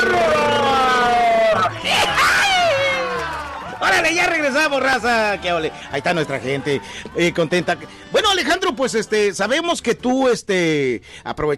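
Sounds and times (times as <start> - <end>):
traditional Salvadoran celebratory shout with high yelping whoop: 0.0 - 4.5
speech: 4.0 - 11.5.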